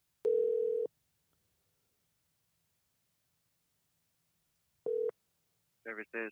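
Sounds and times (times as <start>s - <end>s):
electronic phone tone as a call is placed: 0.2s - 0.9s, 4.9s - 5.1s
person speaking on a phone: 5.9s - 6.2s.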